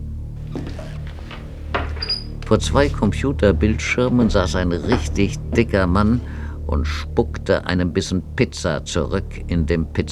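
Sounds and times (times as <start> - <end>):
steady low hum: 0.0 - 10.1
door opening with a handle click and creaking swing: 0.4 - 6.5
speech: 2.5 - 10.1.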